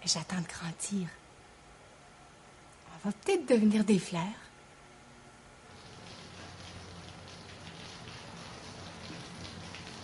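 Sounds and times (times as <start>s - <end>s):
speech: 0.0s - 1.2s, 3.0s - 4.5s
steady rain pattering on a surface: 5.7s - 10.0s.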